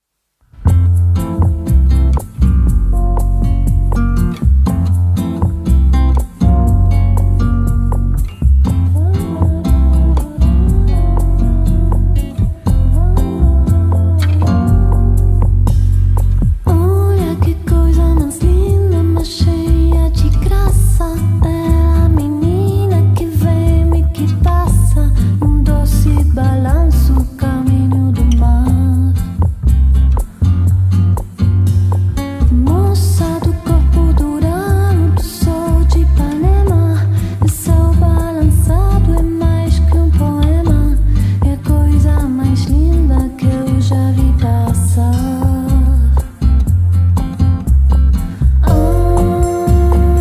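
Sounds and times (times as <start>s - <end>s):
bossa nova music: 0.6s - 50.2s.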